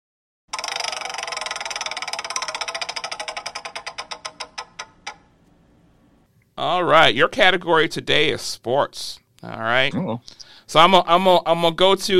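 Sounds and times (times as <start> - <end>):
prize wheel spun to pick a quiz category, ticking: 0.5 - 5.4
speech: 6.6 - 12.1.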